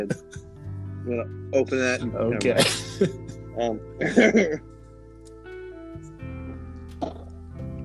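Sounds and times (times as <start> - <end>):
speech: 1.0 - 4.7
laughter: 2.4 - 3.4, 4.0 - 4.6
person drinking a beverage with big gulps: 7.0 - 7.3.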